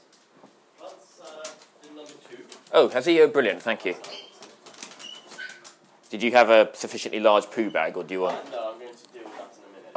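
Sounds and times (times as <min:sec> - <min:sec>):
faint hiss: 0:00.0 - 0:09.9
speech: 0:02.8 - 0:04.2, 0:06.1 - 0:08.6
dog making parakeet-like squeaky vocalizations: 0:04.0 - 0:05.8.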